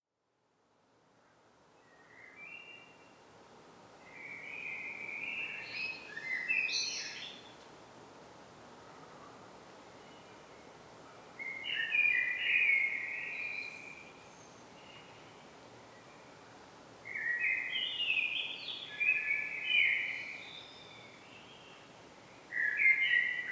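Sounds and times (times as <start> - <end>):
background hiss: 0.6 - 23.5
common blackbird Turdus merula song: 1.8 - 3.2, 4.1 - 7.6, 11.4 - 16.3, 17.1 - 23.5.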